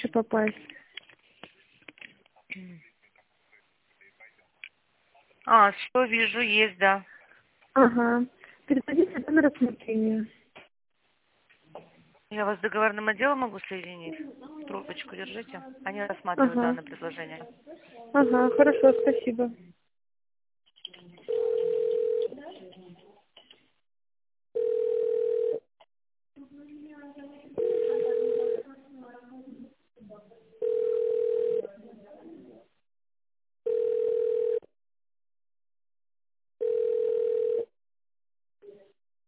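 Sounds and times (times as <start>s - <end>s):
speech: 0.1s - 0.8s, 2.6s - 2.9s, 5.5s - 7.1s, 7.8s - 10.4s, 11.8s - 19.8s
telephone ringback tone through a narrow phone line: 18.2s - 19.3s, 21.3s - 22.3s, 24.6s - 25.6s, 27.6s - 28.6s, 30.6s - 31.7s, 33.7s - 34.7s, 36.6s - 37.7s.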